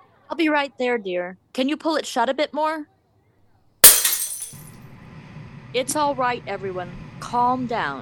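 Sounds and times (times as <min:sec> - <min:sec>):
speech: 0:00.3 - 0:02.9, 0:05.7 - 0:08.0
glass breaking and shattering: 0:03.8 - 0:04.8.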